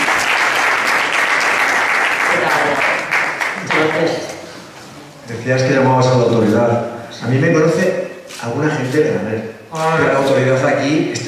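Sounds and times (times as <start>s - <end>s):
audience applauding a town mayor at a public event: 0.0s - 4.2s
speech: 5.5s - 11.2s.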